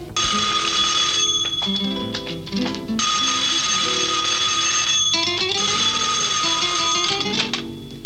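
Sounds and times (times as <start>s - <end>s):
telephone bell ringing: 0.2s - 2.2s, 3.0s - 7.9s.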